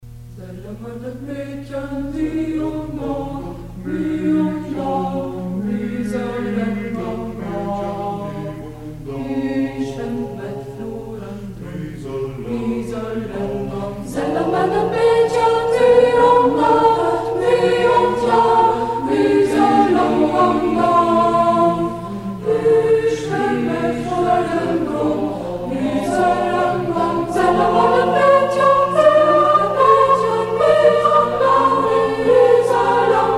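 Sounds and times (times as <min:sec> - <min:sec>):
madrigal choir singing: 0:00.4 - 0:33.3.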